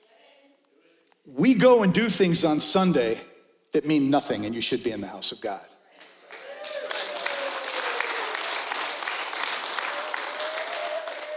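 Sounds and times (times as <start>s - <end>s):
speech: 1.2s - 5.8s
church audience clapping during a sermon: 6.0s - 11.3s.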